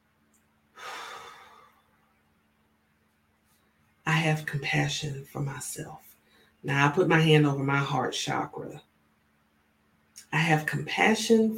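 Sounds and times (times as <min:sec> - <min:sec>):
deep breath drawn in during a guided self-compassion meditation: 0:00.8 - 0:01.9
speech: 0:04.1 - 0:08.9, 0:10.3 - 0:11.5.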